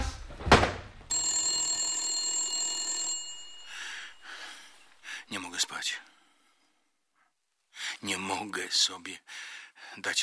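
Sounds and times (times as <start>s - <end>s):
telephone bell ringing in an office: 1.1s - 5.0s
speech: 5.3s - 6.2s, 8.0s - 10.2s.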